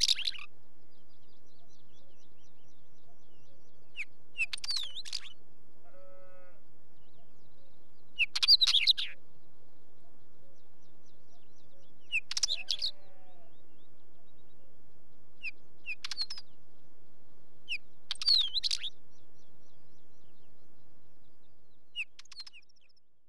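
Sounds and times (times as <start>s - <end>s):
Northern Wheatear singing squeaky whistles and scratchy crackles: 0.0s - 17.0s, 17.6s - 23.2s
sheep bleating softly: 5.8s - 6.6s, 12.5s - 13.6s.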